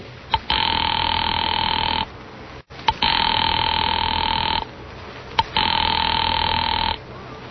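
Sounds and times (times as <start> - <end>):
telephone ringing tone down the line while calling an office: 0.3 - 2.1, 2.9 - 4.7, 5.4 - 7.0.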